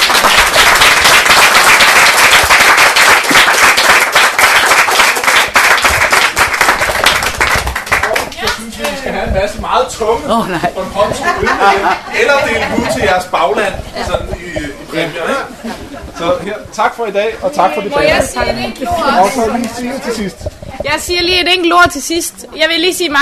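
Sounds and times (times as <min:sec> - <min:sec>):
audience applause for debate participants: 0:00.0 - 0:08.9
speech: 0:10.0 - 0:23.1
laughter: 0:10.3 - 0:16.7.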